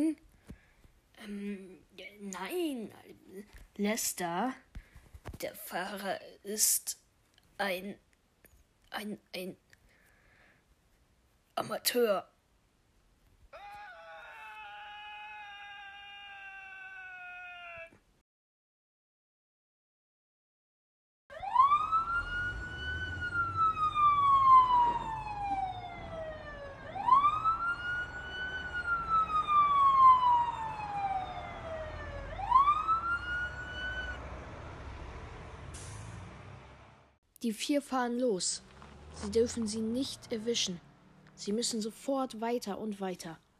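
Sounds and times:
speech: 0:01.3 - 0:04.6, 0:05.3 - 0:07.0, 0:07.6 - 0:08.0, 0:08.9 - 0:09.6, 0:11.6 - 0:12.3, 0:37.5 - 0:43.4
police car siren wailing during a getaway chase: 0:21.3 - 0:35.7.

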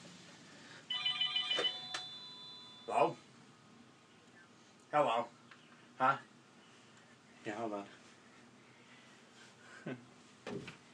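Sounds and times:
telephone ringing with high warbling electronic trill: 0:00.9 - 0:03.0
speech: 0:02.9 - 0:03.2, 0:04.9 - 0:05.4, 0:06.0 - 0:06.3, 0:07.4 - 0:08.0, 0:09.8 - 0:10.8.

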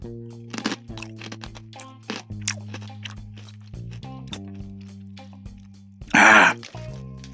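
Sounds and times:
speech: 0:00.0 - 0:00.3
crunching a crisp salty snack stick: 0:00.5 - 0:07.3
steady chewing: 0:00.5 - 0:07.3.

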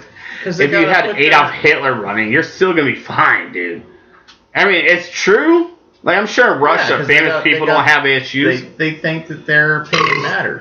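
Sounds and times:
speech: 0:00.4 - 0:03.9, 0:04.5 - 0:10.5
loud burp: 0:09.9 - 0:10.5
person speaking in a low croaky belching rasp: 0:09.9 - 0:10.5.

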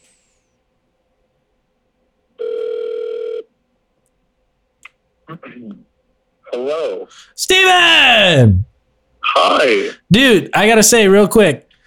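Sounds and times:
ringback tone of an outgoing phone call: 0:02.4 - 0:03.4
speech: 0:05.4 - 0:05.9, 0:06.5 - 0:08.7, 0:09.3 - 0:11.6.

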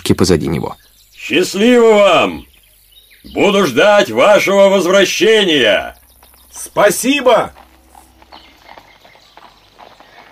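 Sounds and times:
speech: 0:00.1 - 0:02.5, 0:03.2 - 0:07.6
horse with two riders trotting through a dense forest: 0:04.7 - 0:10.3.

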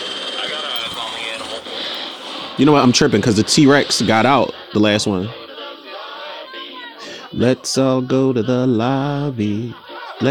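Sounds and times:
helicopter rotor and engine flying overhead: 0:00.0 - 0:05.0
laughter: 0:00.4 - 0:10.2
speech: 0:02.6 - 0:05.4, 0:07.4 - 0:10.2.

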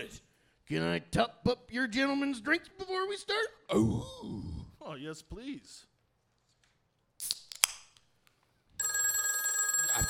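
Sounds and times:
speech: 0:00.0 - 0:05.9
telephone bell ringing: 0:08.8 - 0:10.0.

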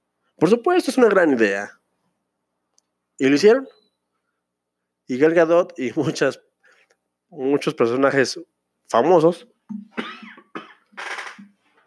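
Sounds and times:
speech: 0:00.4 - 0:01.8, 0:03.2 - 0:03.8, 0:05.1 - 0:06.5, 0:07.3 - 0:10.2
person coughing: 0:09.7 - 0:10.9.

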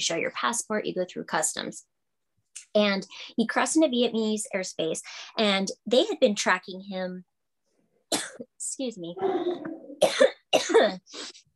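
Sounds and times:
speech: 0:00.0 - 0:01.9, 0:02.6 - 0:07.3, 0:08.2 - 0:11.4
strained vocal sound: 0:09.1 - 0:10.0
harsh coughs: 0:09.2 - 0:11.0.

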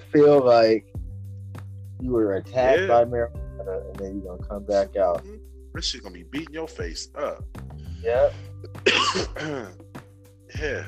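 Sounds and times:
speech: 0:00.1 - 0:01.0, 0:02.0 - 0:09.8, 0:10.5 - 0:10.8
person coughing: 0:08.8 - 0:09.8.

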